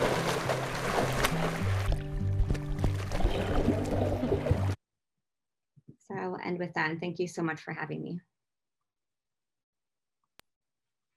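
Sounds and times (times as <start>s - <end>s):
water splashing and sloshing as a tiger moves through it: 0.0s - 4.8s
speech: 6.6s - 8.3s.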